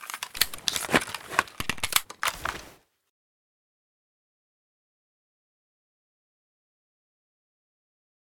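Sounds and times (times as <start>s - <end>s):
weapon reload: 0.0s - 2.8s.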